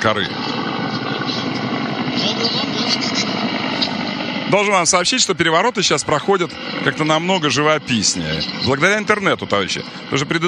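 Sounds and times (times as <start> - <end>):
speech: 0.0 - 0.6, 1.5 - 3.9, 4.5 - 10.4
helicopters and aircraft passing overhead: 0.0 - 10.4.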